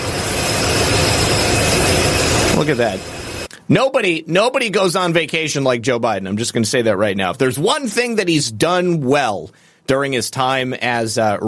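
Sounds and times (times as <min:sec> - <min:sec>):
jet airplane engine roaring: 0:00.0 - 0:03.5
speech: 0:02.6 - 0:03.1, 0:03.7 - 0:11.4.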